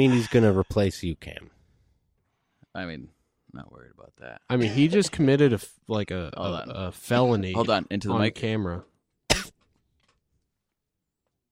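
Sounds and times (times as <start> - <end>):
speech: 0.0 - 1.5, 2.8 - 8.9
sharp cough off the microphone: 9.3 - 9.7.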